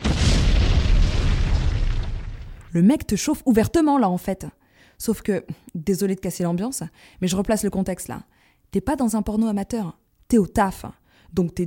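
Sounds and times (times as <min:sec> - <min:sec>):
deep rumbling explosion boom: 0:00.0 - 0:02.8
speech: 0:02.8 - 0:11.6.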